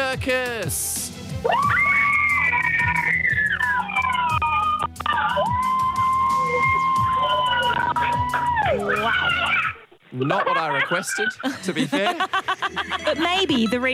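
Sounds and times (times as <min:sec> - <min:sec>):
speech: 0:00.1 - 0:01.9, 0:10.2 - 0:13.9
large audience screaming at full volume: 0:01.4 - 0:09.8
laughter: 0:06.8 - 0:13.9.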